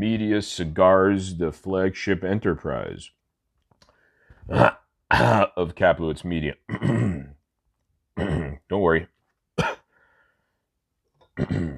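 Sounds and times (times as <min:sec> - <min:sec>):
speech: 0:00.0 - 0:03.2, 0:04.5 - 0:07.3, 0:08.2 - 0:09.7, 0:11.4 - 0:11.7
harsh rasping smoker's coughs: 0:04.5 - 0:05.6, 0:06.7 - 0:07.4, 0:08.2 - 0:08.7, 0:09.6 - 0:09.9, 0:11.4 - 0:11.7
faint wheezy breath: 0:09.8 - 0:10.6.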